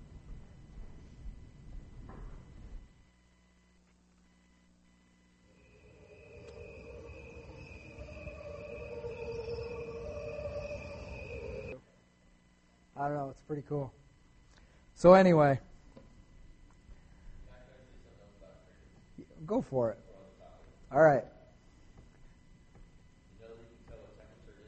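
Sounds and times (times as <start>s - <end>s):
sustained high whining tones: 5.4s - 11.8s
crickets chirping: 5.5s - 11.8s
speech: 13.0s - 14.0s, 15.0s - 15.7s, 19.5s - 20.0s, 20.9s - 21.3s.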